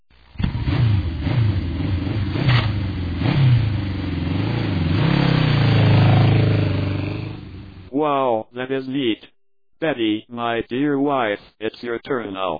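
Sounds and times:
new motorcycle engine starting and revving: 0:00.3 - 0:07.9
speech: 0:08.0 - 0:12.5.

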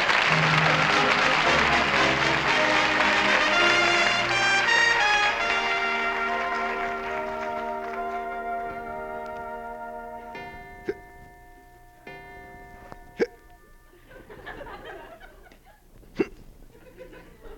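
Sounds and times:
sustained tones: 0:00.0 - 0:15.2
hiccups: 0:13.1 - 0:13.5, 0:16.1 - 0:16.5
laughter: 0:14.0 - 0:15.9, 0:16.7 - 0:17.5.

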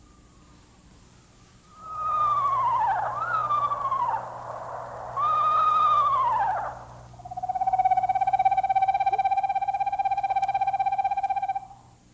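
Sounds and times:
screech owl quavering whinnies and monotone trill: 0:00.0 - 0:12.0.

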